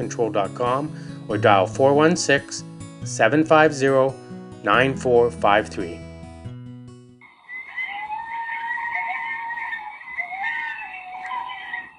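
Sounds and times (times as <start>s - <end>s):
speech: 0.0s - 6.0s
chorus of North American coyotes howling and yipping: 7.2s - 11.9s.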